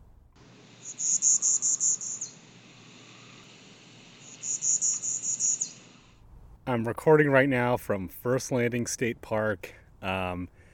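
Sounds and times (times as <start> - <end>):
frog calling in a swamp: 0.5 - 6.2
speech: 6.7 - 10.6.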